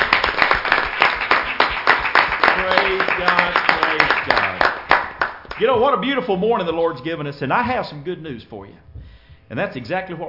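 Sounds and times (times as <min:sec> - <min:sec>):
church congregation clapping hands in praise during a worship service: 0:00.0 - 0:05.9
speech: 0:05.6 - 0:08.9, 0:09.5 - 0:10.2.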